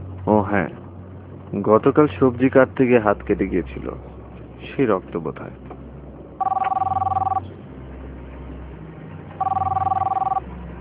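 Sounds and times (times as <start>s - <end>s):
low steady noise: 0.0s - 10.7s
speech: 0.3s - 0.8s, 1.5s - 4.2s, 4.8s - 5.7s
telephone bell ringing: 6.4s - 7.4s, 9.4s - 10.4s.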